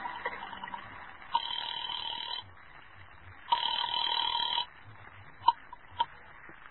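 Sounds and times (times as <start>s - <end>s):
long steady buzzing tones on a telephone line: 0.0s - 2.6s, 3.5s - 6.1s.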